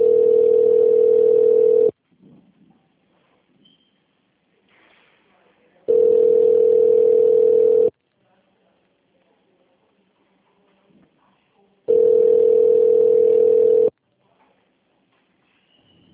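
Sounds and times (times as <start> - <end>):
telephone connecting tone on a call to a company's phone line: 0.0 - 2.0, 5.9 - 7.9, 11.9 - 13.9.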